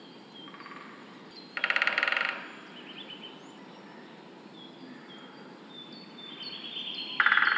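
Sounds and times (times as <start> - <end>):
faint songbirds twittering: 0.0 - 7.5
great spotted woodpecker sharp metallic calls: 0.5 - 2.7, 7.1 - 7.5.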